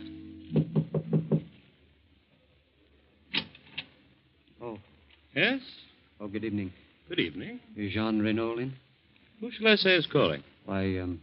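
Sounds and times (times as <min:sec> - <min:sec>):
knocking on a wooden door at night: 0:00.5 - 0:01.5
speech: 0:04.7 - 0:08.8, 0:09.4 - 0:11.2.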